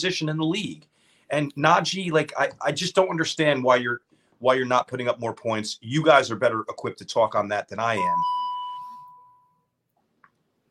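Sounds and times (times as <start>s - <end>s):
speech: 0.0s - 8.4s
bell ding: 8.0s - 9.6s.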